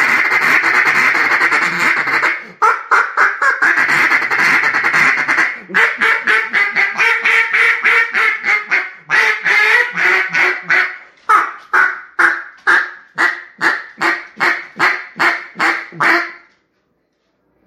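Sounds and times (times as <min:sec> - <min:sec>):
duck quacking: 0:00.0 - 0:16.5.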